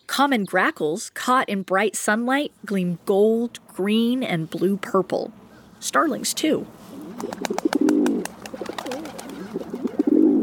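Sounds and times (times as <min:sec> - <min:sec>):
speech: 0:00.2 - 0:07.6
rock pigeon cooing: 0:06.9 - 0:10.4.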